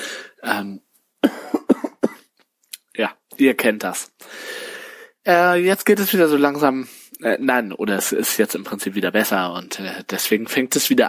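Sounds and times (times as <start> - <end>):
speech: 0.5 - 0.9, 3.0 - 4.5, 5.2 - 11.0
coughing from a flu-like infection: 1.2 - 2.3.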